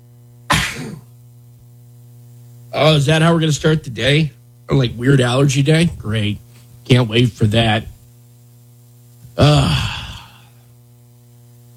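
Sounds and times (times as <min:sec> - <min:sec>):
faint steady hum: 0:00.0 - 0:11.7
sneeze: 0:00.5 - 0:01.1
speech: 0:02.7 - 0:07.9, 0:09.4 - 0:09.8.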